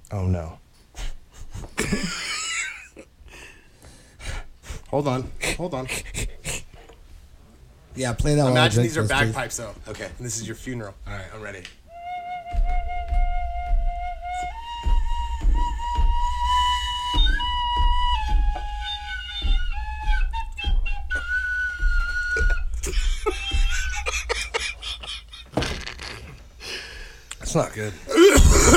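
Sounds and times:
speech: 0:00.1 - 0:00.6, 0:04.9 - 0:06.2, 0:08.0 - 0:11.8, 0:27.6 - 0:28.1
laughter: 0:01.7 - 0:03.0, 0:22.4 - 0:26.3
tin whistle playing a wavering halting melody: 0:11.9 - 0:23.8
low rumbling thumps: 0:12.4 - 0:26.6.

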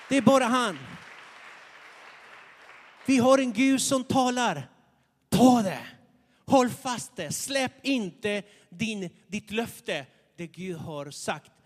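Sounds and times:
church audience applauding during a sermon: 0:00.0 - 0:04.0
speech: 0:00.1 - 0:00.9, 0:03.1 - 0:04.7, 0:05.3 - 0:11.5.

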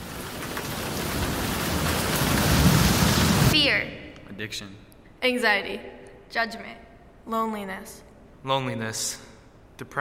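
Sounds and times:
low rolling rumble of thunder: 0:00.0 - 0:03.6
steady dense rain pouring down: 0:00.0 - 0:03.6
speech: 0:04.4 - 0:09.9.

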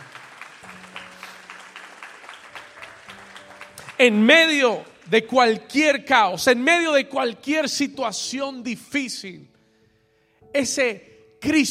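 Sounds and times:
audience applauding: 0:00.0 - 0:05.2
speech: 0:04.0 - 0:09.5, 0:10.5 - 0:11.6.

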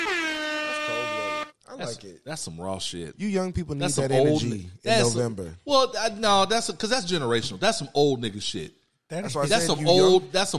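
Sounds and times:
air horn blaring: 0:00.0 - 0:01.6
speech: 0:01.8 - 0:10.5.

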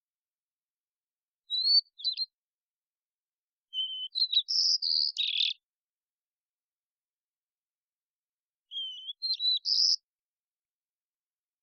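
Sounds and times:
immature White-crowned sparrow Zonotrichia leucophrys song: 0:01.4 - 0:02.4, 0:03.6 - 0:05.7, 0:08.6 - 0:10.1.

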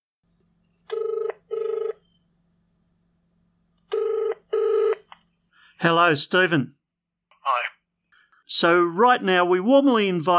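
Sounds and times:
mobile phone ringback tone: 0:00.9 - 0:02.2, 0:03.9 - 0:05.1
speech: 0:05.8 - 0:06.8, 0:08.5 - 0:10.3.

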